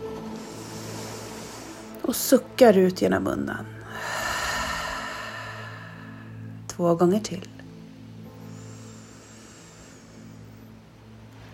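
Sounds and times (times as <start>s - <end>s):
long slow deep inhale through the nose: 0.0s - 2.0s, 3.8s - 6.6s, 8.3s - 10.8s
speech: 2.1s - 3.8s, 6.8s - 7.6s.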